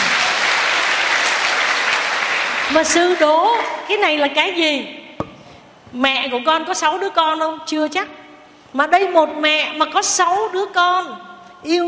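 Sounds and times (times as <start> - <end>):
audience applause at a Buddhist teaching session: 0.0 - 3.3
speech: 2.7 - 5.0, 5.9 - 11.8.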